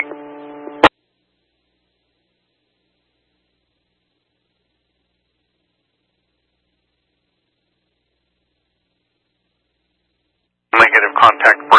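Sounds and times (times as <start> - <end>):
radio static from an open radio channel: 10.8 - 11.7.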